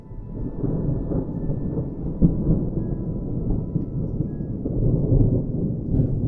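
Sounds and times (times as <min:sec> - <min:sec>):
distant thunder rumbling: 0:00.0 - 0:06.2.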